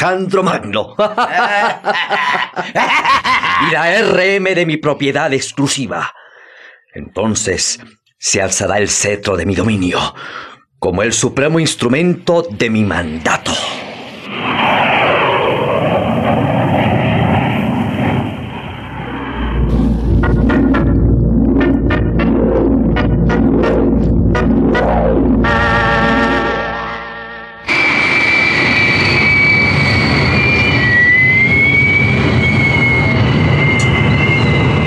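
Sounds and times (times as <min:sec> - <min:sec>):
speech: 0:00.0 - 0:06.2, 0:06.9 - 0:15.2
laughter: 0:00.9 - 0:04.2
aircraft engine roar: 0:13.4 - 0:34.8.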